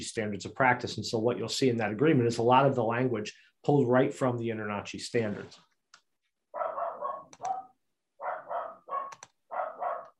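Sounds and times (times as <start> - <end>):
speech: 0.0 - 5.7
dogs barking at a home: 6.6 - 10.1.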